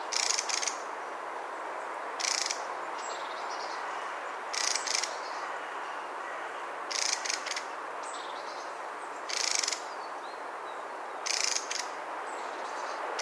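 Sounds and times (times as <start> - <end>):
constant hiss: 0.0 - 13.2
mistle thrush rattling: 2.2 - 3.1, 4.5 - 5.2, 6.9 - 7.6, 9.3 - 9.8, 11.2 - 11.9
faint high bird calls: 2.2 - 10.3, 11.2 - 13.2.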